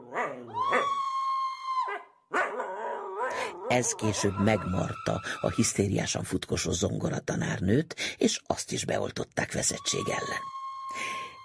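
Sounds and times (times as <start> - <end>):
dog yelping: 0.0 - 1.2, 1.8 - 3.8
dog howling: 0.0 - 5.2
speech: 3.7 - 11.1.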